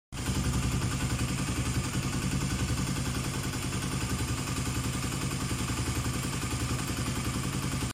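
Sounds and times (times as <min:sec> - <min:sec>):
Kawasaki D-Tracker 250 motorcycle engine ticking: 0:00.2 - 0:07.9.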